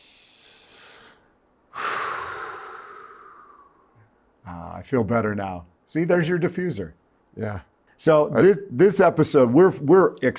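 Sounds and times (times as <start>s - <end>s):
long loud exhale during breathing exercise: 0.0s - 4.1s
deep inhale during breathing exercise: 0.0s - 4.2s
speech: 4.5s - 10.3s.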